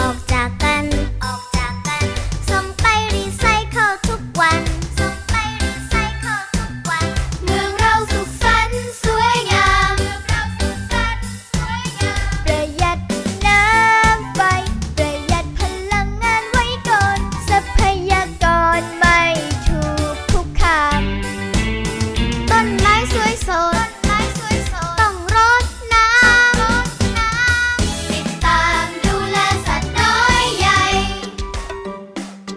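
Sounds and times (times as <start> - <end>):
cheerful Thai children's song about caring for nature: 0.0 - 21.6, 22.2 - 32.2.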